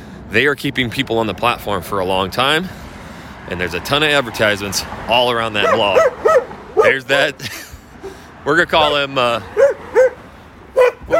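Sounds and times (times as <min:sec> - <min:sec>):
speech: 0:00.3 - 0:02.8, 0:03.4 - 0:09.7
dog barking in short sharp yips: 0:05.6 - 0:06.9, 0:09.5 - 0:10.2, 0:10.8 - 0:11.1.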